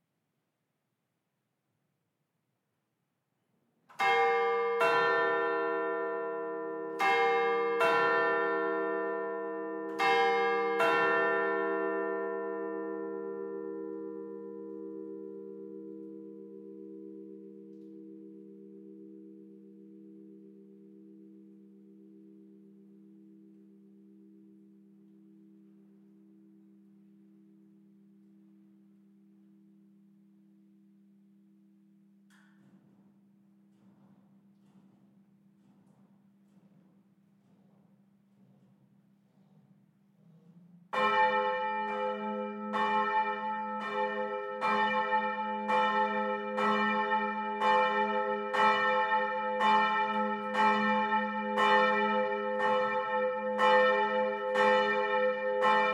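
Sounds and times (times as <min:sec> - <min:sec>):
full peal of parish church bells: 0:03.9 - 0:24.7, 0:40.9 - 0:55.9.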